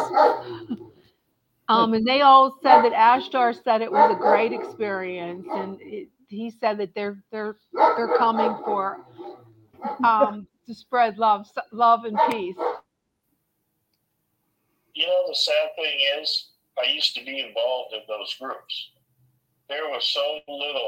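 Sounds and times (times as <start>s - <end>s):
dog barking: 0.0s - 0.7s, 2.7s - 3.2s, 3.8s - 5.8s, 7.7s - 10.3s, 12.2s - 12.8s
speech: 1.7s - 12.8s, 15.0s - 19.0s, 19.7s - 20.8s.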